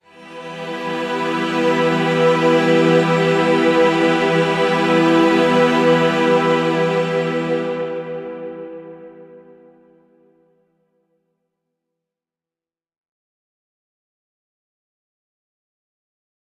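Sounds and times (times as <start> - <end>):
violin chord: 0.0 - 10.0.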